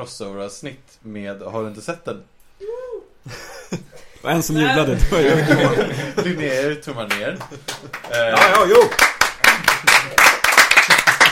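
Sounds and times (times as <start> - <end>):
speech: 0.0 - 2.4, 3.2 - 9.2
laughter: 4.8 - 6.8
hand clapping as someone tries to start a round of applause: 7.1 - 11.3.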